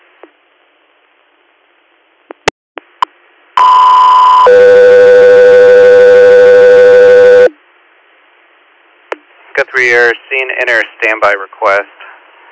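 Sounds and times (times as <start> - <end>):
radio dispatch alert tones paging an air medical crew: 3.6 - 7.5
speech: 9.8 - 12.0.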